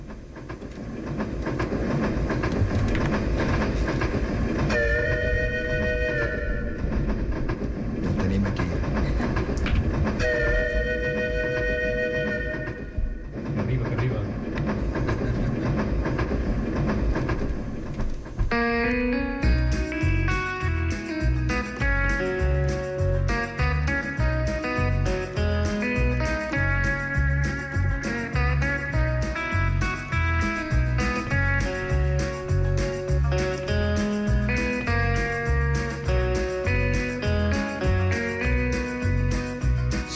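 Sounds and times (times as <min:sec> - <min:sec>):
train running on rails with clickety-clack rhythm: 0:00.0 - 0:40.1
long train whistle blasts: 0:04.7 - 0:07.2, 0:10.2 - 0:13.2.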